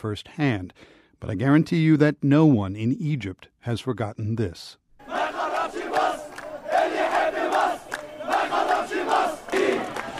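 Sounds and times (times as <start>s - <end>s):
speech: 0.0s - 4.8s
large protest crowd chanting in unison in a public square: 5.0s - 10.1s.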